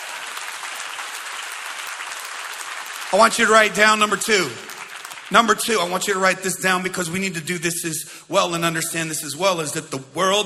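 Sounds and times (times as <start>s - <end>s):
audience clapping: 0.0s - 6.4s
speech: 3.1s - 4.7s, 5.3s - 10.4s.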